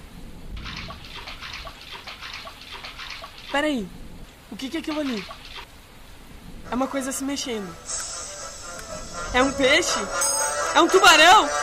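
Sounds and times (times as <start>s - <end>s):
water splashing from someone swimming through cold floodwater: 0.6s - 3.7s, 4.7s - 5.7s
speech: 3.5s - 5.4s, 6.7s - 8.0s, 9.3s - 11.6s.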